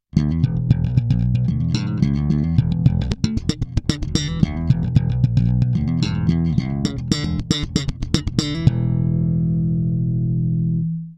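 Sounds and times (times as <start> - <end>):
MAXON CP9PRO+ slap bass: 0.0 - 11.1.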